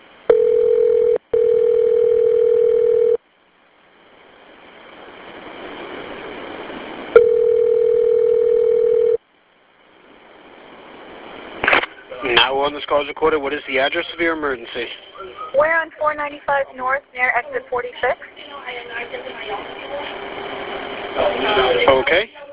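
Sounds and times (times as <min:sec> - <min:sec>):
telephone ringback tone during emergency call transfer: 0:00.3 - 0:03.2, 0:07.2 - 0:09.2
speech: 0:12.7 - 0:19.8, 0:21.2 - 0:22.4.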